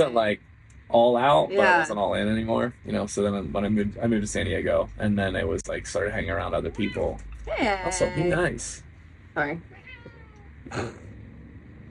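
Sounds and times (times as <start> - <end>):
speech: 0.0 - 8.8, 9.4 - 9.8, 10.7 - 11.0
low steady hum: 0.0 - 11.8
cat meowing: 6.7 - 8.5, 9.7 - 10.6.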